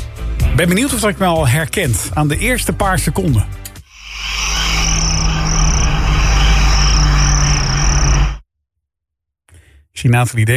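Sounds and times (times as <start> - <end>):
speech: 0.6 - 3.6, 10.0 - 10.5
dense chorus of chirping crickets: 3.9 - 8.4
low rumbling hum: 4.0 - 8.4.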